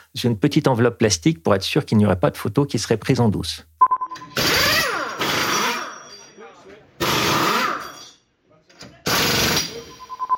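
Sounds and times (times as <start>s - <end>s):
speech: 0.1s - 3.7s
pneumatic wheel guns during Formula 1 tyre-change practice: 4.3s - 6.1s, 7.0s - 8.2s, 9.1s - 9.9s
faint tone: 9.9s - 10.3s.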